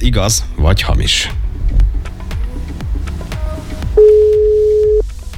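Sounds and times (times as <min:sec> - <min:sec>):
speech: 0:00.0 - 0:01.4
upbeat music: 0:01.3 - 0:05.0
telephone ringback tone: 0:04.0 - 0:05.0.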